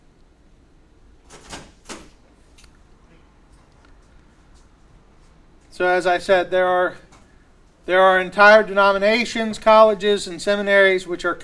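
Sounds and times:
low hum: 0.0s - 11.4s
door being opened: 1.2s - 2.4s
speech: 5.8s - 7.0s, 7.9s - 11.4s.

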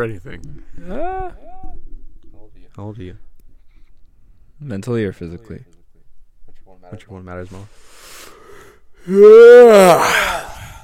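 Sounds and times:
speech: 0.0s - 1.6s, 2.7s - 3.3s, 4.6s - 5.8s, 6.8s - 8.0s, 9.0s - 10.3s
loud human yawn with breathy exhale: 0.7s - 1.8s, 8.5s - 10.8s.

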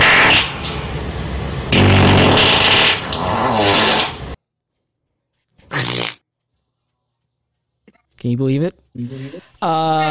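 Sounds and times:
loud long sputtering fart: 1.7s - 4.3s, 5.6s - 6.2s
speech: 8.2s - 10.0s.

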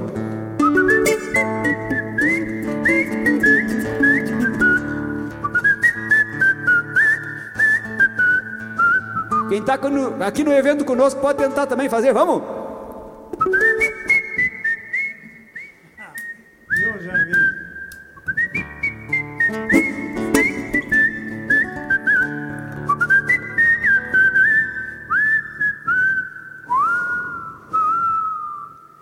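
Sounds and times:
steady instrumental accompaniment: 0.0s - 6.4s, 13.0s - 14.9s, 18.6s - 24.8s
person whistling a lively melody at an event: 0.6s - 9.6s, 13.3s - 28.9s
speech: 9.6s - 12.6s.

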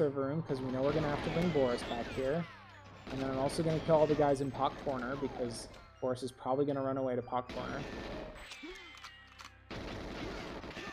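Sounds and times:
speech: 0.0s - 8.8s
video game gunfire from several attackers shooting at the player: 0.5s - 5.9s, 7.5s - 9.0s, 9.7s - 10.9s.

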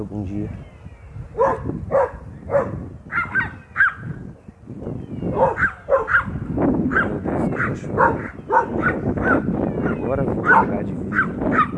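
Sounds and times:
speech: 0.0s - 0.7s, 1.3s - 2.9s, 7.8s - 9.5s, 10.1s - 11.7s
dog barking: 1.4s - 4.0s, 5.3s - 11.7s.

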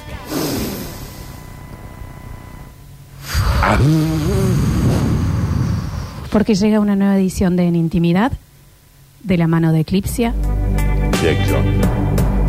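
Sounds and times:
drawn-out voiced sighing exhale: 0.2s - 1.4s, 3.2s - 6.3s
long breathy inhale: 0.2s - 1.4s, 3.2s - 6.3s
speech: 3.7s - 4.4s, 6.3s - 8.4s, 9.2s - 10.6s, 11.2s - 12.1s.

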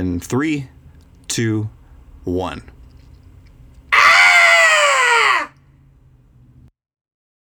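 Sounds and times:
speech: 0.0s - 2.8s
group of people screaming together: 3.9s - 5.5s.

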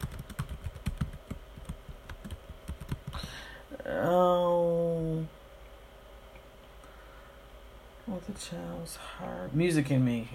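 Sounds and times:
rapid typing on a computer keyboard: 0.0s - 3.2s
speech: 3.1s - 5.4s, 8.1s - 10.3s.

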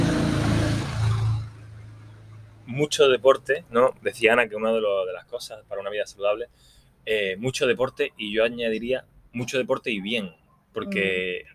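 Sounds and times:
motorcycle passing by: 0.0s - 2.5s
low steady hum: 0.8s - 11.5s
speech: 2.8s - 11.5s.

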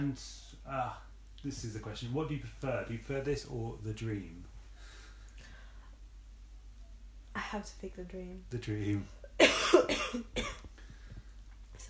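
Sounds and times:
speech: 0.0s - 4.5s, 7.4s - 10.7s
wet chesty cough: 9.4s - 10.7s.

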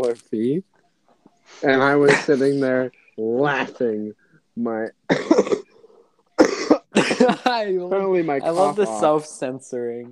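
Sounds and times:
speech: 0.0s - 0.7s, 1.5s - 5.6s, 7.0s - 10.1s
man coughing harshly into a mic: 2.0s - 2.7s, 5.1s - 5.8s, 6.4s - 7.4s.

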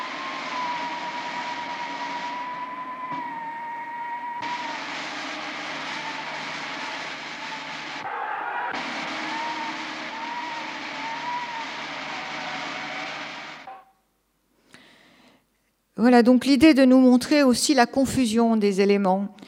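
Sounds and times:
loud amplified roaring rush sound effect: 0.0s - 13.8s
thin wavering whistling tone sound effect: 0.0s - 14.0s
speech: 16.0s - 19.4s.

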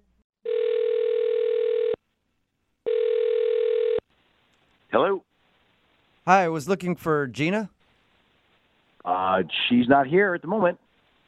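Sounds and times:
long steady telephone ringback tones: 0.5s - 2.0s, 2.9s - 4.0s
speech: 6.2s - 7.7s, 9.4s - 10.8s.

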